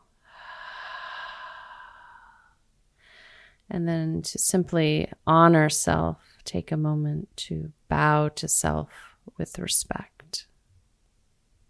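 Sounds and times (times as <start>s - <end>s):
long deep breath during a yoga meditation: 0.2s - 3.6s
speech: 3.7s - 10.5s.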